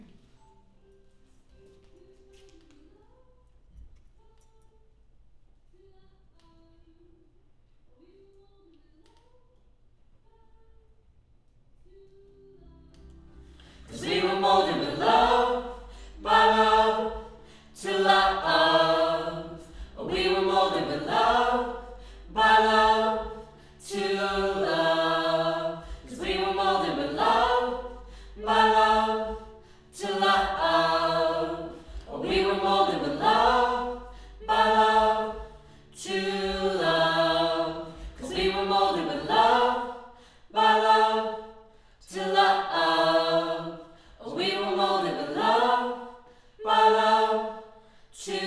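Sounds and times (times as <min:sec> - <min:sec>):
choir singing: 0:13.3 - 0:48.4.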